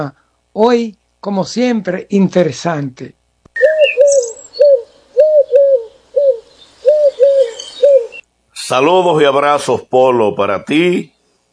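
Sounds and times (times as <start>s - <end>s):
speech: 0.0s - 3.2s, 8.7s - 11.1s
faint chirps of other birds: 3.5s - 8.3s
turtle dove cooing: 3.6s - 8.2s.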